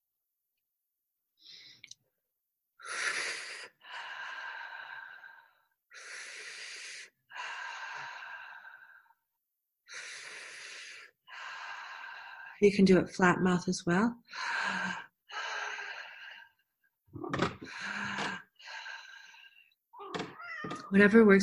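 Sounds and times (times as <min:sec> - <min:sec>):
person breathing during a guided exercise: 0:01.4 - 0:02.0, 0:02.8 - 0:12.6, 0:14.2 - 0:16.7, 0:17.5 - 0:20.4
speech: 0:12.6 - 0:14.4, 0:20.9 - 0:21.4.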